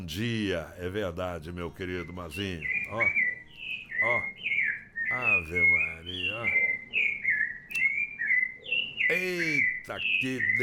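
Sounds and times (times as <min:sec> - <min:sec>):
speech: 0:00.0 - 0:03.2, 0:04.0 - 0:04.5, 0:05.1 - 0:06.6, 0:09.1 - 0:10.6
rufous-bellied thrush singing clear loud whistled phrases: 0:01.9 - 0:10.6.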